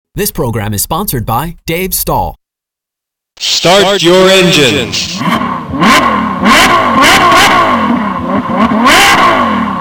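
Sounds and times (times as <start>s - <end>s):
speech: 0.2s - 2.4s, 3.4s - 7.6s, 8.5s - 9.4s
race car engine firing up and revving: 4.8s - 9.7s.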